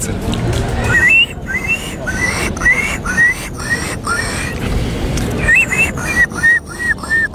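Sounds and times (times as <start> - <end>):
laughter: 0.0 - 7.3
steady rumble: 0.0 - 7.3
contestant in a Polish bird-imitation contest imitating a gull: 0.8 - 7.3.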